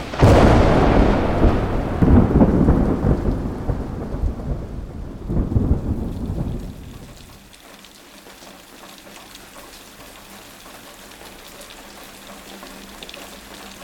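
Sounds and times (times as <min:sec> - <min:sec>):
thunder rumbling low and heavy with a loud crack: 0:00.0 - 0:07.5
hailstorm pounding down: 0:00.0 - 0:13.8.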